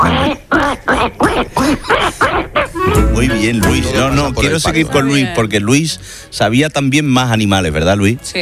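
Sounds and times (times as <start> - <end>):
person imitating duck quacks: 0.0 - 4.0
speech: 3.4 - 8.4.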